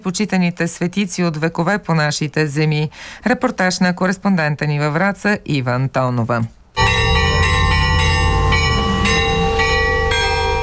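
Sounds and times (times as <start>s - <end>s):
speech: 0.0s - 6.6s
church bells of a newly built church ringing festively in a village: 6.8s - 10.6s.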